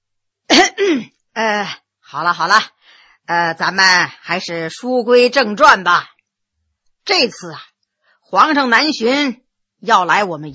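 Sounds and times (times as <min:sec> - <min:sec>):
person clearing throat: 0:00.5 - 0:01.1
speech: 0:00.9 - 0:06.1, 0:07.1 - 0:07.7, 0:08.3 - 0:10.5.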